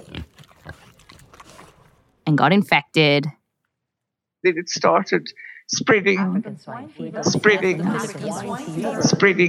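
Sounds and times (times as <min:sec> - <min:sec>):
pig grunting and snuffling while eating: 0:00.0 - 0:01.9
pig chewing: 0:00.0 - 0:02.2
speech: 0:02.3 - 0:03.4, 0:04.4 - 0:09.4.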